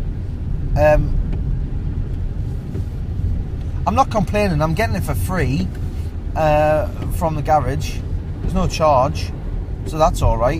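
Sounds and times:
road noise inside an old 2002 Toyota Avensis driving: 0:00.0 - 0:10.5
speech: 0:00.8 - 0:01.3, 0:03.9 - 0:05.8, 0:06.4 - 0:10.5.

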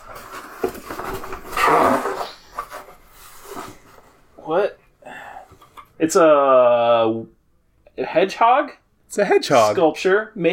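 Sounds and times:
box being grabbed and popped open: 0:00.0 - 0:04.0
speech: 0:06.1 - 0:07.4, 0:08.0 - 0:10.5.

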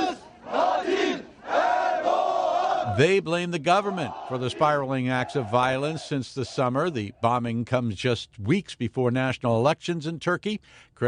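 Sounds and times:
angry crowd shouting and roaring as protesters scuffle with police: 0:00.0 - 0:03.0, 0:03.7 - 0:07.0
speech: 0:03.0 - 0:11.0.

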